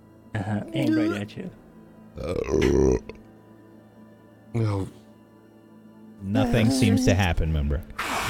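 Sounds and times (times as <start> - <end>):
speech: 0.4 - 1.6, 2.2 - 3.2, 4.6 - 5.0, 6.3 - 8.0
loud drawn-out throaty burp: 2.2 - 3.2.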